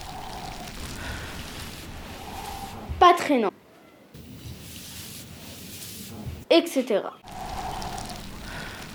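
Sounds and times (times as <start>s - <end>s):
steady falling rain: 0.0s - 2.8s, 4.2s - 6.4s, 7.2s - 8.9s
speech: 3.1s - 3.5s, 6.6s - 7.3s.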